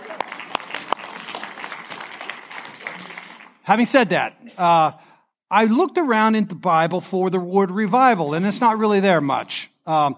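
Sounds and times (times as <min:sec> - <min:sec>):
audience applauding: 0:00.0 - 0:03.6
speech: 0:03.7 - 0:10.1.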